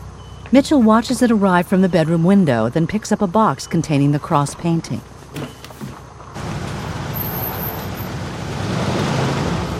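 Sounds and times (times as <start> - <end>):
muscle car engine rumbling while pulling up a driveway: 0.0 - 9.7
speech: 0.5 - 5.6.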